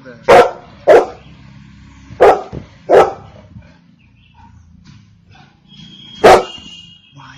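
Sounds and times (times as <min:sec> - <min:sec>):
golden retriever barking: 0:00.2 - 0:01.3, 0:02.2 - 0:03.5, 0:06.2 - 0:06.7.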